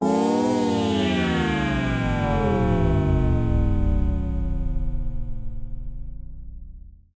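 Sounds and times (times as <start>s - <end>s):
long weird robotic space synth power down: 0.0s - 7.0s.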